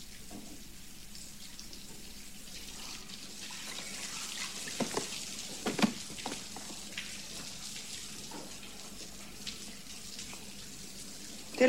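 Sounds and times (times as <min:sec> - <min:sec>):
small splashes in bathwater: 0:02.5 - 0:11.6
bathwater tinted yellow with mustard sloshing and trickling: 0:02.7 - 0:09.4.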